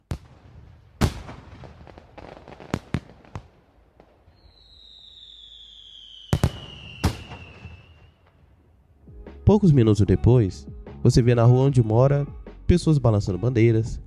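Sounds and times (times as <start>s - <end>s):
fireworks bursting in sharp bangs: 0.0s - 8.6s
thin whistling streak of fireworks: 4.3s - 8.4s
speech: 9.5s - 14.0s.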